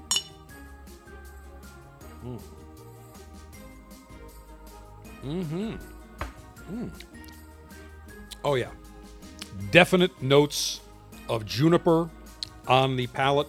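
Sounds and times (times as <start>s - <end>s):
glasses clinking in a toast: 0.0s - 0.5s
brief vocal sounds: 2.2s - 2.6s, 5.2s - 5.9s
speech: 2.2s - 2.7s, 5.2s - 5.9s, 6.7s - 7.2s, 8.4s - 8.8s, 9.5s - 13.4s.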